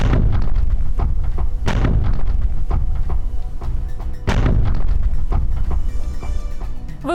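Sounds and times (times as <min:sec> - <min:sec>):
heavy explosions of homemade devices: 0:00.0 - 0:03.3, 0:04.2 - 0:05.9
constant thick rumble: 0:00.0 - 0:05.7.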